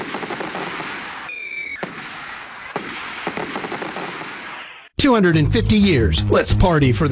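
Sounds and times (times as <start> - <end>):
fireworks banging and crackling: 0.0 - 4.9
speech: 5.0 - 7.1.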